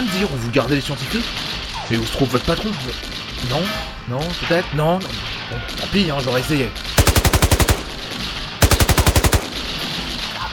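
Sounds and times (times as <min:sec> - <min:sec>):
speech: 0:00.2 - 0:07.0
machine gun fire in a video game: 0:07.0 - 0:10.3.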